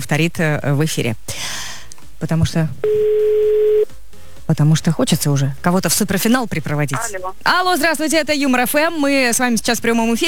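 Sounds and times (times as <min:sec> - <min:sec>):
speech: 0:00.0 - 0:01.6, 0:02.2 - 0:03.2, 0:04.5 - 0:10.2
telephone ringing tone while a call waits to be answered: 0:02.8 - 0:03.9.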